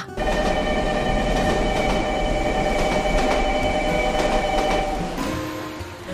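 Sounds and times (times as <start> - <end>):
subway train rumbling at Gangnam Station in Seoul: 0.0 - 6.1
sustained metallic tones: 0.0 - 6.1.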